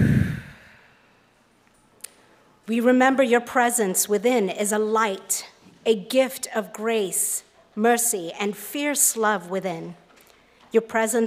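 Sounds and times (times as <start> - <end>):
group breathing in and out in unison during a prayer: 0.0 - 1.3
speech: 2.7 - 10.0, 10.7 - 11.2.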